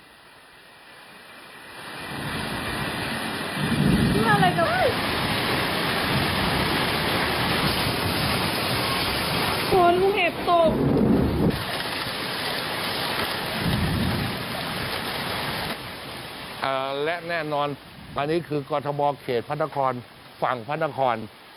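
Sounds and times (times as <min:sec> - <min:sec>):
dense roaring downpour: 0:00.0 - 0:21.5
strong gusts of wind: 0:01.5 - 0:16.7, 0:17.4 - 0:18.8
hail battering surfaces: 0:01.7 - 0:18.6
speech: 0:17.2 - 0:21.4.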